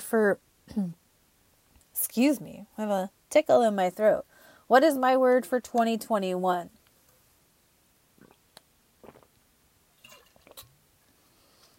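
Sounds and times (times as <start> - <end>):
speech: 0.1 - 1.0, 2.0 - 6.8
mouth clicks and slurping while drinking water: 8.2 - 9.4, 10.0 - 10.7
person gulping and swallowing water: 8.2 - 9.4, 10.0 - 10.7.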